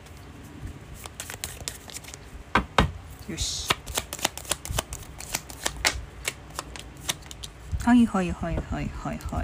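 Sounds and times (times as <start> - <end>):
tarot cards being shuffled and drawn: 1.0 - 2.3, 3.5 - 7.6
speech: 3.3 - 3.8, 7.8 - 9.4.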